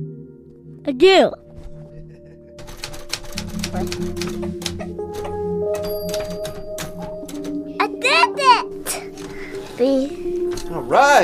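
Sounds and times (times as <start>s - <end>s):
speech: 0.8s - 1.4s, 3.7s - 4.6s, 9.8s - 11.2s
typewriter keys clacking: 2.6s - 7.7s.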